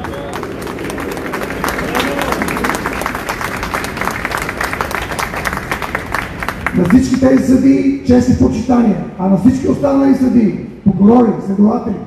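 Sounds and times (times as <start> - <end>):
large audience applauding: 0.0 - 7.5
speech: 7.0 - 12.0.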